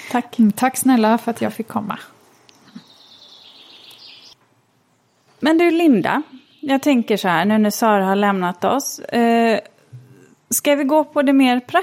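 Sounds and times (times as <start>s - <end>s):
quiet hiss: 0.0s - 11.4s
speech: 0.1s - 2.2s, 5.5s - 9.7s, 10.5s - 11.8s
bird trilling inside a glasshouse at Sofiero: 2.5s - 4.4s.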